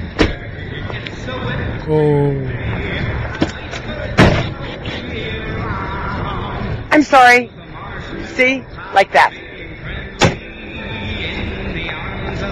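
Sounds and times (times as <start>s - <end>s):
steady noise: 0.0s - 12.4s
woman's car door banging into another car: 0.2s - 0.4s, 4.2s - 4.6s, 10.2s - 10.5s
speech: 1.9s - 2.6s, 7.0s - 7.6s, 8.4s - 9.4s.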